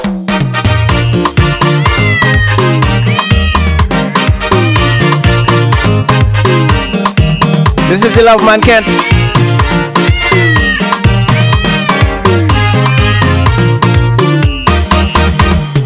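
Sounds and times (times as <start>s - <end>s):
loud steady music with a strong beat: 0.0s - 15.8s
cat meowing: 1.6s - 5.6s, 8.7s - 13.8s
speech: 8.1s - 9.2s.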